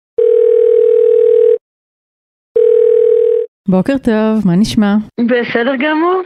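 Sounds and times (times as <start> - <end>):
telephone ringback tone of an outgoing call: 0.2 - 1.6, 2.6 - 3.5
speech: 3.7 - 6.2.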